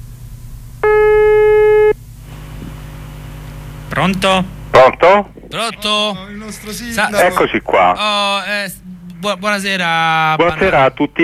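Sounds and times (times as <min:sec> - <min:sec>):
low hum: 0:00.0 - 0:11.2
telephone ringback tone of a call waiting to be answered: 0:00.8 - 0:02.0
speech: 0:04.0 - 0:11.2.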